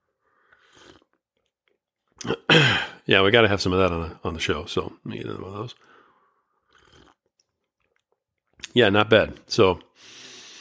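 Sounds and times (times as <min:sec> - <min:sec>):
slurping sip of coffee: 0:00.5 - 0:01.3, 0:06.6 - 0:07.4
speech: 0:02.2 - 0:06.0, 0:08.7 - 0:10.2.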